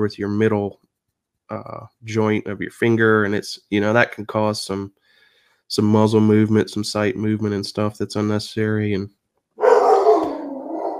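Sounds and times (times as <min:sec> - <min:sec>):
speech: 0:00.0 - 0:00.9, 0:01.5 - 0:05.0, 0:05.7 - 0:09.2
dog growling bark: 0:09.6 - 0:10.9.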